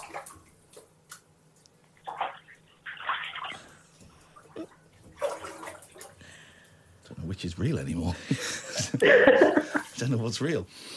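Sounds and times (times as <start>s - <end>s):
water splashing and sloshing as a man bathes in a bath: 0.0s - 6.8s
speech: 7.4s - 10.9s
laughter: 8.2s - 9.9s.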